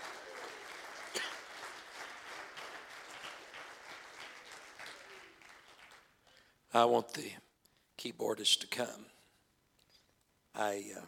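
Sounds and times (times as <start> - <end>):
church audience clapping in worship: 0.0 - 6.4
speech: 6.8 - 7.4, 8.0 - 9.2, 10.6 - 11.0.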